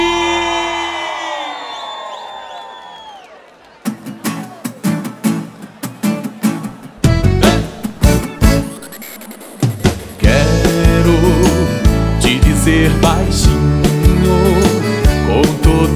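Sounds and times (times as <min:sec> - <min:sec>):
crowd shouting and cheering: 0:00.0 - 0:15.3
music with rhythmic punchy beats: 0:07.0 - 0:15.8.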